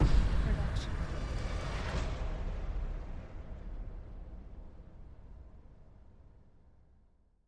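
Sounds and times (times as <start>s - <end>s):
epic hit: 0.0s - 4.7s.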